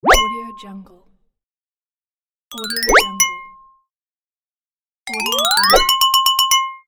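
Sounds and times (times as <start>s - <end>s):
playful prize bell: 2.5s - 3.6s, 5.1s - 6.8s.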